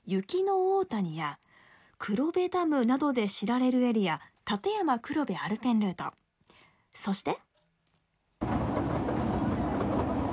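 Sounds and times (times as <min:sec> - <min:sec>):
speech: 0:00.1 - 0:01.4, 0:02.0 - 0:06.2, 0:06.9 - 0:07.5
trolley train on the Kurobe Gorge Railway in Toyama, Japan, running: 0:08.4 - 0:10.3.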